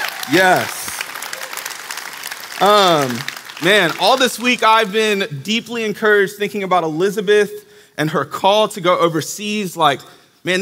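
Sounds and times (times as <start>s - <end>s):
audience applause: 0.0s - 5.2s
speech: 0.3s - 0.8s, 2.6s - 10.6s.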